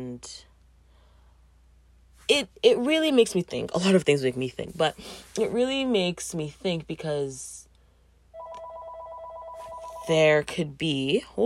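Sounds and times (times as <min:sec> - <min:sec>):
speech: 0:00.0 - 0:00.5, 0:02.3 - 0:07.6, 0:10.1 - 0:11.4
telephone ringing with an electronic two-tone warble: 0:08.4 - 0:10.2.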